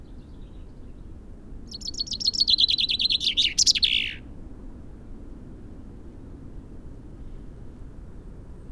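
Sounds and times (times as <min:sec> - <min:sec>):
low background noise: 0:00.0 - 0:08.6
Common chaffinch Fringilla coelebs singing: 0:01.7 - 0:04.2.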